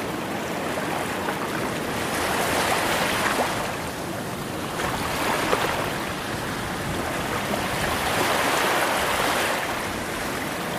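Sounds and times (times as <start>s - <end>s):
ocean waves: 0.0s - 10.7s.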